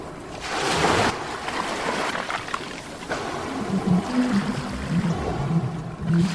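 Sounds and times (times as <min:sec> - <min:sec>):
ocean waves played from a machine: 0:00.0 - 0:06.3
low drawn-out whale calls: 0:03.1 - 0:06.3.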